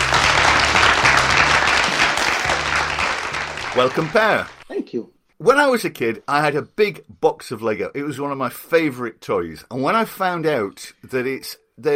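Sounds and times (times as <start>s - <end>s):
audience applause welcoming a speaker: 0.0s - 4.6s
speech: 3.8s - 11.9s.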